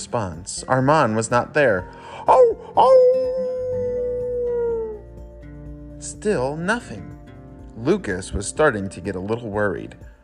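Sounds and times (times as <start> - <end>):
speech: 0.0 - 3.6, 6.0 - 7.1, 7.8 - 10.1
dog howling: 2.2 - 5.1.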